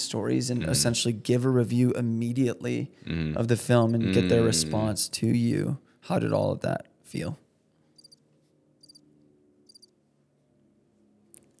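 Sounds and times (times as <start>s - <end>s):
speech: 0.1s - 7.4s
crickets chirping: 8.0s - 8.2s, 8.8s - 9.0s, 9.7s - 9.9s.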